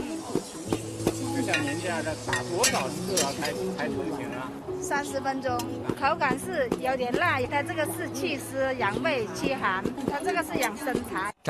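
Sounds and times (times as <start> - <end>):
scraping stirs in iron wok making oil tea: 0.4 - 3.8
speech: 1.5 - 11.4.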